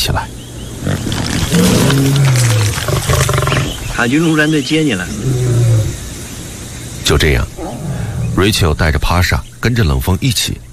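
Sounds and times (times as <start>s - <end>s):
noisy rumbling background: 0.0s - 10.7s
lion roaring deeply: 0.8s - 4.0s, 5.0s - 6.1s, 7.3s - 8.7s
speech: 4.0s - 5.4s, 7.1s - 7.8s, 8.4s - 10.7s.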